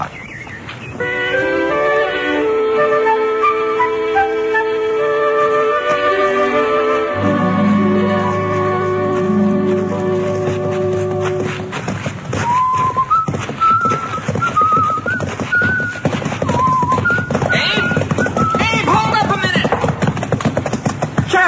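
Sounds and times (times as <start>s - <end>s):
birds chirping and whistling: 0.0s - 1.1s, 12.4s - 18.9s
horse clip-clopping while led carrying surveying instruments: 2.4s - 21.4s.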